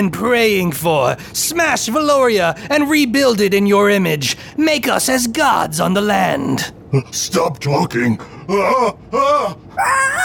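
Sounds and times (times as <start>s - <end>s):
speech: 0.0s - 10.2s
man screaming: 9.3s - 10.2s.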